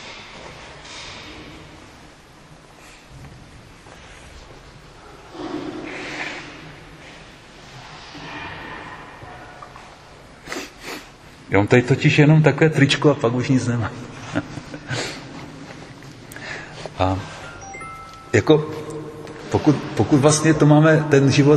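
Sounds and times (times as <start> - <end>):
person blowing nose: 10.4 - 11.1
sniffing: 10.4 - 11.2
speech: 11.5 - 14.5, 17.0 - 17.3, 18.3 - 18.8, 19.5 - 21.5.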